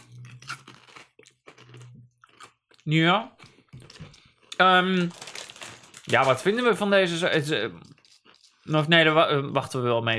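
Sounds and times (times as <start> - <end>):
crunching bites on strong chilli and lime potato chips: 0.0 - 2.7, 3.8 - 8.8
speech: 2.9 - 3.4, 4.6 - 5.2, 6.1 - 7.9, 8.7 - 10.1.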